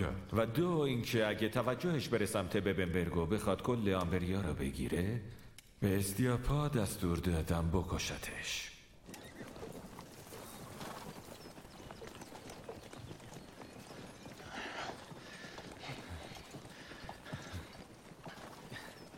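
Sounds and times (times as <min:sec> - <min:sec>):
speech: 0:00.0 - 0:09.2
horses' hooves clip-clopping while being ridden: 0:09.0 - 0:19.1.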